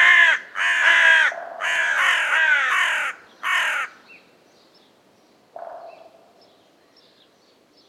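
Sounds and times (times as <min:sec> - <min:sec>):
Corvus corone carrion crow cawing: 0:00.0 - 0:04.0.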